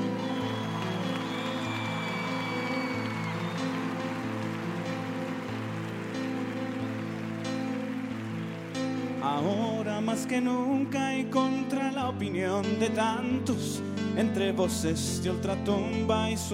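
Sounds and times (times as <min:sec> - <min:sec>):
crowd applauding at a religious gathering: 0:00.0 - 0:10.4
speech: 0:09.3 - 0:16.5.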